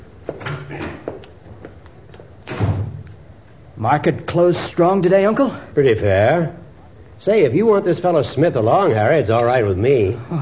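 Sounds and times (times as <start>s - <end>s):
door shutting with a dull thud as a visitor leaves: 2.5s - 3.0s
speech: 3.8s - 6.6s, 7.2s - 10.4s.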